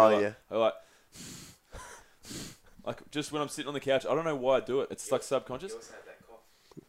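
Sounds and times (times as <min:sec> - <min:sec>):
speech: 0:00.0 - 0:01.4, 0:02.9 - 0:06.2
forceful nasal snorts: 0:01.2 - 0:02.7.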